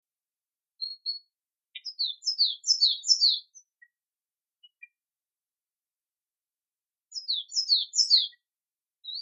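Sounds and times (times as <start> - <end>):
native forest bird chirping: 0.8 - 4.0, 4.6 - 5.0, 7.1 - 9.2.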